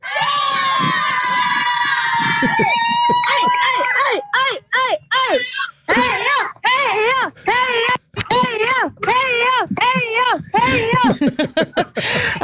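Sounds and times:
group of people including children cheering and shouting for passing runners: 0.0s - 11.4s
laughter: 0.1s - 6.6s, 8.0s - 12.4s.

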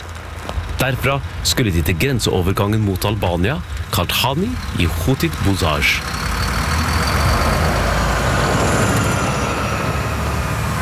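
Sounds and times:
bus engine drone and road noise in city traffic: 0.0s - 10.8s
speech: 0.8s - 6.3s
hiss of passing vehicles: 3.5s - 10.8s.

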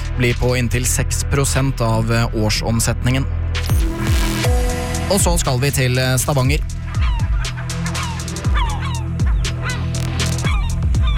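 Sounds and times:
speech: 0.2s - 3.8s, 5.1s - 6.7s
seagulls calling in Stavanger: 6.0s - 11.1s.

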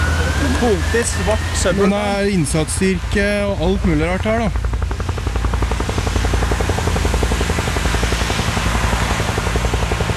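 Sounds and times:
helicopter flying overhead with rotor blades beating over deep engine rumble: 0.0s - 10.1s
speech: 0.6s - 4.7s.

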